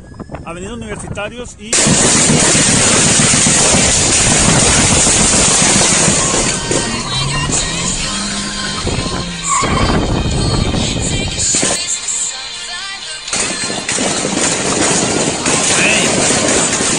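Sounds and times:
road and wind noise: 0.0s - 16.9s
speech: 0.4s - 4.1s
gunshots: 1.7s - 9.5s, 13.3s - 16.9s
car engine revving and accelerating: 2.1s - 16.9s.

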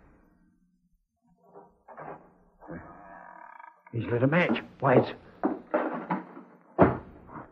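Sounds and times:
door creaking and scraping as it is eased open: 1.3s - 7.1s
speech: 4.0s - 5.2s.

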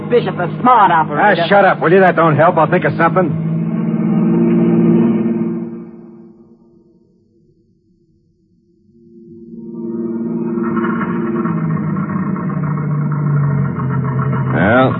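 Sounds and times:
car engine sputtering out of gas: 0.0s - 6.3s, 9.8s - 14.9s
dramatic music ending on a rising sweep: 0.0s - 6.7s, 9.1s - 14.9s
speech: 0.1s - 3.5s.

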